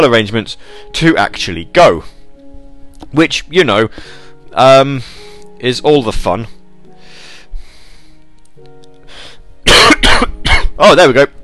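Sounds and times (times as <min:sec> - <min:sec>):
speech: 0:00.0 - 0:02.2, 0:03.1 - 0:06.6, 0:10.2 - 0:11.4
quiet breath: 0:00.6 - 0:00.9, 0:03.9 - 0:04.4, 0:05.0 - 0:05.5, 0:06.5 - 0:08.3, 0:09.1 - 0:09.5
loud harsh cough burst: 0:09.7 - 0:10.8
person clearing throat: 0:09.7 - 0:10.8.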